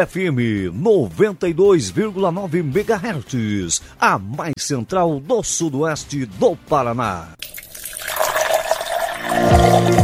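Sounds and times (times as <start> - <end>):
speech: 0.0 - 7.6
coffee being poured into a cup: 7.4 - 10.0.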